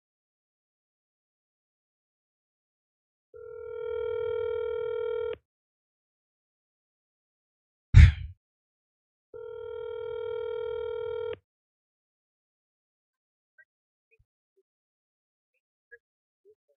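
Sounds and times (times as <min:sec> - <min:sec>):
telephone dial tone during an outgoing phone call: 0:03.4 - 0:05.4, 0:09.4 - 0:11.4.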